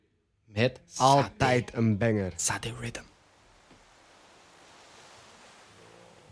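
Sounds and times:
speech: 0:00.5 - 0:03.1
ocean waves: 0:03.0 - 0:06.3.

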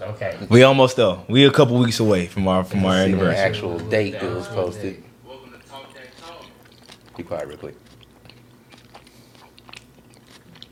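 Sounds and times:
faint hum: 0:00.0 - 0:10.6
speech: 0:00.1 - 0:05.1, 0:07.2 - 0:07.9
person chewing and crunching salad: 0:05.3 - 0:10.6.

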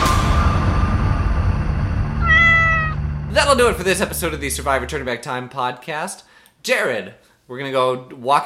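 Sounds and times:
steady rumbling background: 0:00.2 - 0:05.6
cat meowing: 0:02.2 - 0:03.0
speech: 0:03.5 - 0:08.4.

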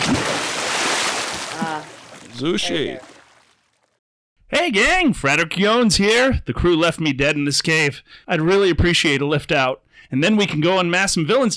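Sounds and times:
loud rushing splash of something plunging into water: 0:00.0 - 0:04.0
speech: 0:02.4 - 0:03.1, 0:04.5 - 0:11.5.

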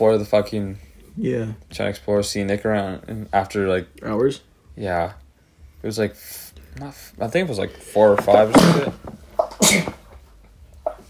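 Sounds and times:
speech: 0:00.0 - 0:05.2, 0:05.8 - 0:10.0
single sharp sneeze: 0:08.5 - 0:10.1.

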